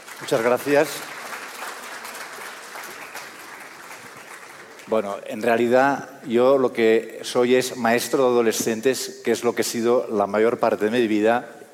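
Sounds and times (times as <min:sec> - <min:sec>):
audience applause: 0:00.0 - 0:05.1
speech: 0:00.2 - 0:01.2, 0:04.9 - 0:11.7.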